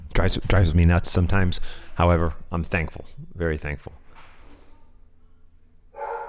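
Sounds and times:
room noise: 0:00.0 - 0:06.2
speech: 0:00.2 - 0:04.0
dog barking: 0:05.9 - 0:06.2
dog yelp: 0:06.0 - 0:06.2.

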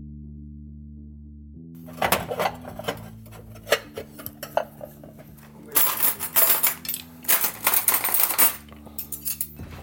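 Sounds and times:
low steady hum: 0:01.8 - 0:09.5
cutlery and dishes clinking as a table is set: 0:01.9 - 0:09.8.

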